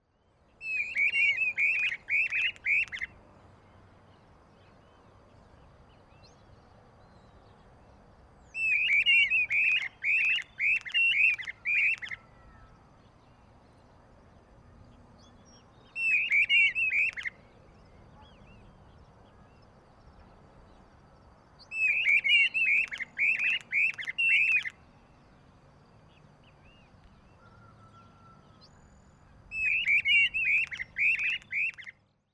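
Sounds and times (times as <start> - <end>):
Gubernetes yetapa: 0.6 - 3.2, 8.5 - 13.4, 15.2 - 20.3, 21.6 - 25.1, 26.1 - 32.3.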